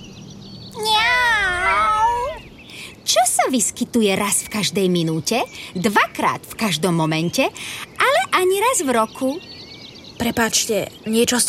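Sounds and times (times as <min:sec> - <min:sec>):
cat meowing: 0:00.8 - 0:02.4
speech: 0:03.5 - 0:09.5, 0:10.2 - 0:11.4.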